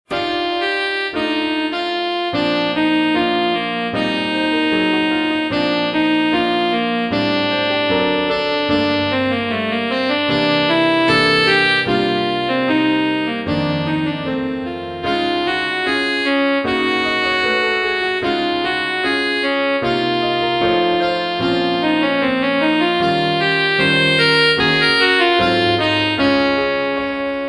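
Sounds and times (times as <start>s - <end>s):
romantic saxophone music: 0.1s - 27.4s.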